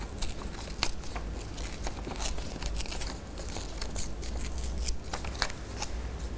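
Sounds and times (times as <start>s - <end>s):
colored paper torn slowly by hand: 0.0s - 6.3s.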